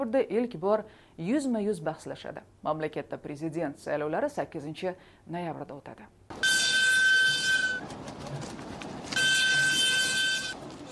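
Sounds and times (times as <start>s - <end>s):
speech: 0.0s - 6.6s
freight train rolling rail rumble: 6.3s - 10.9s
freight train high-pitched horn tones: 6.4s - 7.8s, 9.2s - 10.9s.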